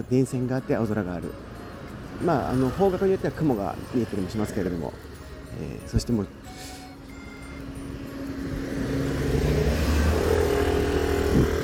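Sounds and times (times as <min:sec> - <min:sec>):
speech: 0:00.0 - 0:01.5, 0:02.2 - 0:06.8
motorcycle passing close by outdoors: 0:02.0 - 0:05.2, 0:07.4 - 0:11.6.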